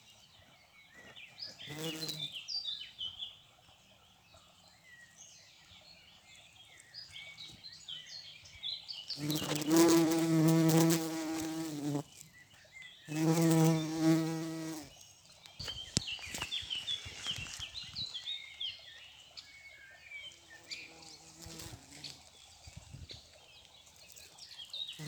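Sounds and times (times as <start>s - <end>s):
small birds chirping and twittering: 0.0s - 25.0s
bumblebee flight buzz: 1.7s - 2.3s, 9.2s - 12.2s, 13.1s - 15.0s, 20.6s - 22.2s, 24.9s - 25.0s.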